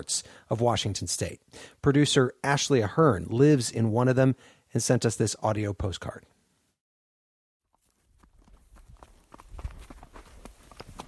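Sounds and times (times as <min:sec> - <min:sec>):
speech: 0:00.0 - 0:06.4
horse hooves plodding through dry sagebrush: 0:07.7 - 0:11.0.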